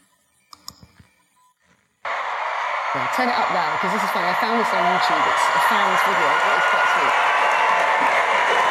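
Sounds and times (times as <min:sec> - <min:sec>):
computer mouse clicking: 0:00.5 - 0:01.0
speech: 0:02.9 - 0:07.4, 0:08.0 - 0:08.6.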